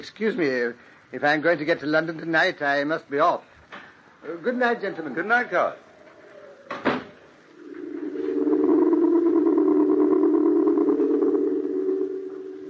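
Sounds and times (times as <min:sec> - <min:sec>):
speech: 0:00.0 - 0:03.5, 0:04.2 - 0:05.8
door shutting with a solid thud: 0:06.7 - 0:07.2
steady low droning hum: 0:07.5 - 0:12.6.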